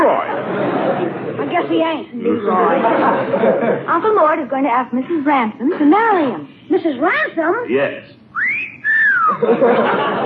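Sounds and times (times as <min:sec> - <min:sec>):
laughter: 0:00.0 - 0:04.0, 0:09.1 - 0:10.2
busy noisy background: 0:00.0 - 0:10.2
speech: 0:01.7 - 0:08.2, 0:09.3 - 0:10.2
person whistling: 0:08.4 - 0:09.4.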